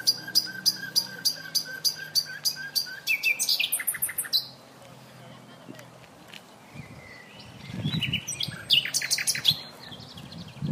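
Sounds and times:
Common nightingale Luscinia megarhynchos song: 0.0s - 4.6s, 6.6s - 10.7s.

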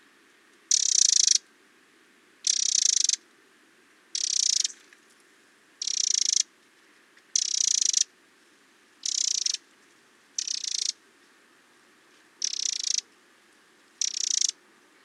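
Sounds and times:
Eurasian wren Troglodytes troglodytes churring rattles: 0.7s - 1.4s, 2.4s - 3.2s, 4.1s - 4.8s, 5.8s - 6.5s, 7.3s - 8.1s, 9.0s - 9.6s, 10.4s - 11.0s, 12.4s - 13.1s, 14.0s - 14.6s.

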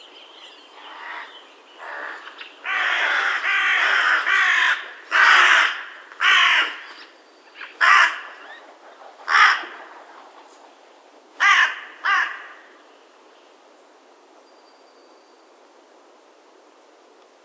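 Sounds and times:
carrion crow Corvus corone giving harsh rasping caws: 0.9s - 6.8s, 7.8s - 8.4s, 9.3s - 9.8s, 11.4s - 12.8s.

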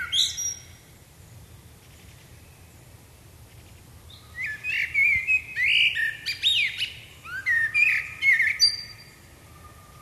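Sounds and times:
common blackbird Turdus merula singing: 0.0s - 0.8s, 4.1s - 9.9s.

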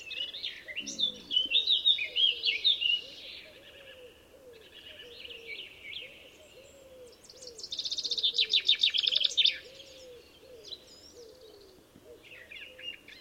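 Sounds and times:
common chaffinch song: 0.0s - 13.1s
steady series of soft low arched notes: 0.8s - 1.7s.

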